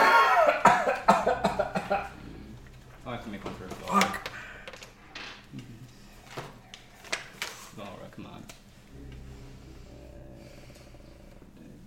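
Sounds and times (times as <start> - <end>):
people coughing: 0.0 - 4.6.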